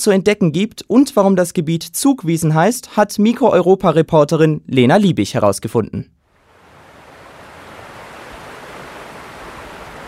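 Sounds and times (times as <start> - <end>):
speech: 0.0 - 6.2
rushing stream water: 6.3 - 10.0.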